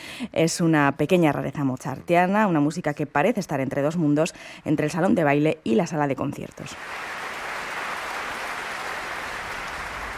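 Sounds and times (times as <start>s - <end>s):
speech: 0.2s - 7.1s
large concert audience applauding an orchestra: 6.8s - 10.1s.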